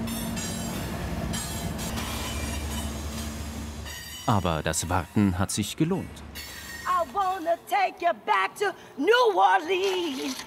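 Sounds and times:
long freight train rumbling past: 0:00.0 - 0:07.4
freight train wheels squealing high-pitched: 0:00.0 - 0:07.7, 0:09.4 - 0:10.4
speech: 0:04.3 - 0:06.5, 0:07.4 - 0:10.4.

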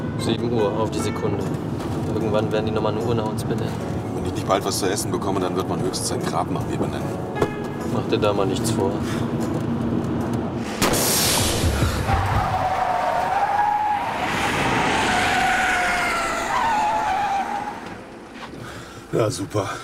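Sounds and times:
speech: 0:00.2 - 0:09.4, 0:19.2 - 0:19.8
car engine noise: 0:09.2 - 0:18.6
car tyre squealing while skidding on a burst tyre: 0:11.8 - 0:18.8.

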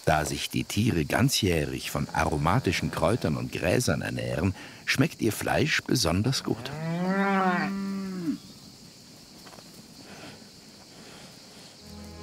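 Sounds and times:
speech: 0:00.0 - 0:07.0
cow mooing in the Maremma: 0:06.6 - 0:08.4.

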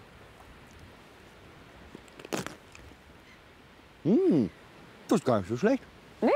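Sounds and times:
person biting into food: 0:02.1 - 0:02.9
speech: 0:04.0 - 0:06.3.

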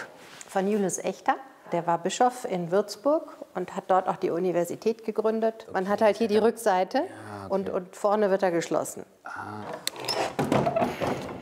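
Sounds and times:
speech: 0:00.5 - 0:09.9
heavy wooden door hinges creaking: 0:09.5 - 0:11.4.

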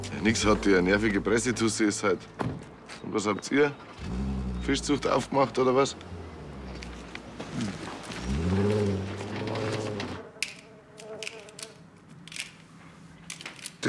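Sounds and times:
speech: 0:00.0 - 0:06.1
bee buzzing: 0:06.0 - 0:11.9.

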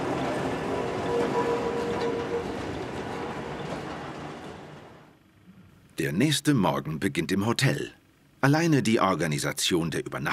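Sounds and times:
historic tram rumbling on rails: 0:00.0 - 0:05.2
speech: 0:06.0 - 0:10.3.

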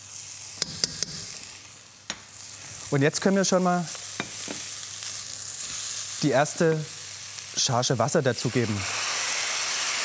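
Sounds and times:
vegetables gently sweating in butter in a pan: 0:00.0 - 0:10.0
sharp pops and crackles of vegetables in butter: 0:00.6 - 0:01.4
speech: 0:02.9 - 0:04.0, 0:06.2 - 0:07.0, 0:07.6 - 0:09.0.

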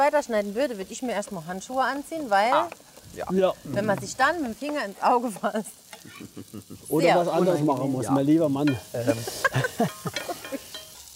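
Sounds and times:
speech: 0:00.0 - 0:10.6
food sizzling in a pan for browning: 0:00.0 - 0:11.1
laughter: 0:06.0 - 0:07.0, 0:09.0 - 0:10.7
scraping and clattering from stirring food in a pan: 0:08.7 - 0:11.1.

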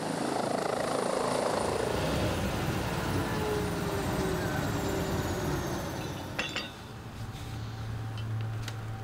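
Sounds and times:
helicopter rotor and engine roaring overhead: 0:00.0 - 0:09.0.

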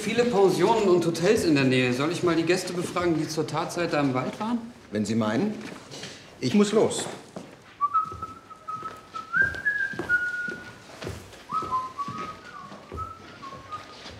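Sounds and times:
speech: 0:00.0 - 0:07.2
soft irregular thumps: 0:07.4 - 0:14.1
man whistling a meandering tune: 0:07.8 - 0:10.8, 0:11.5 - 0:14.0.

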